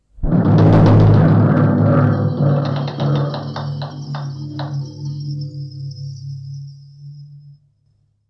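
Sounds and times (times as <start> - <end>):
Trống Chầu drum: 0.2 - 5.2.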